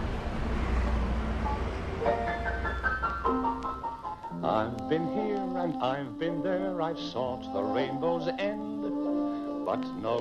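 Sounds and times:
heavy road traffic rumbling: 0.0s - 5.1s
speech: 4.6s - 8.8s, 9.7s - 10.1s.

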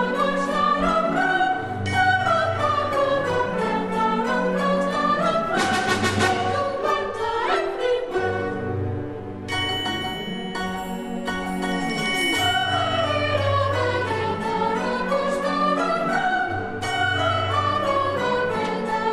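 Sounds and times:
full orchestral opera passage with sustained strings and brass: 0.0s - 19.1s
bells ringing in an opera orchestral passage: 9.5s - 15.3s, 16.2s - 18.6s.

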